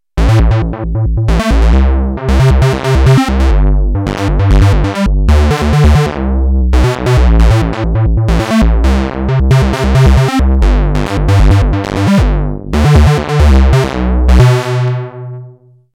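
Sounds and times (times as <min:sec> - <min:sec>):
analog monophonic synthesizer playing a square wave: 0:00.2 - 0:15.7.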